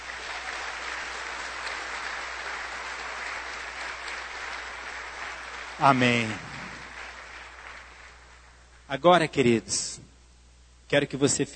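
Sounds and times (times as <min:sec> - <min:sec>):
audience applauding: 0:00.0 - 0:08.6
speech: 0:05.8 - 0:06.5, 0:08.9 - 0:10.1, 0:10.9 - 0:11.5.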